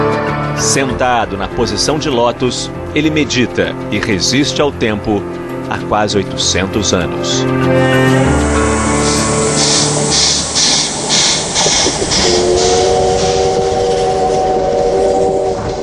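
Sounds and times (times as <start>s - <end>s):
speech: 0.6s - 8.6s
nearly 90-year-old steam locomotive whistle in Japan: 7.7s - 15.8s
constant roar of hissing steam from a steam locomotive: 8.8s - 15.8s.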